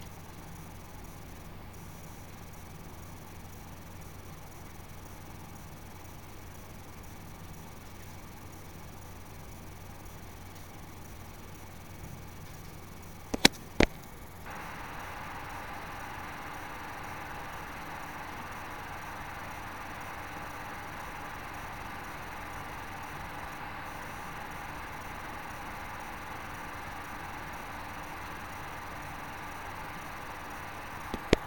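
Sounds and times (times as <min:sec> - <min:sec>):
noise: 0:00.0 - 0:31.4.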